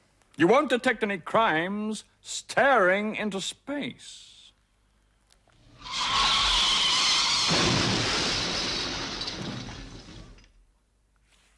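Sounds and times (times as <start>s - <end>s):
speech: 0.4s - 4.4s
tires screeching in an accident: 5.8s - 7.8s
glass breaking and debris crunching in an accident: 5.9s - 10.5s.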